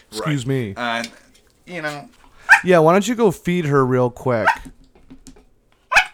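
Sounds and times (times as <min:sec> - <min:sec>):
speech: 0:00.1 - 0:04.8
dog barking: 0:02.4 - 0:02.7, 0:04.4 - 0:04.7, 0:05.9 - 0:06.1.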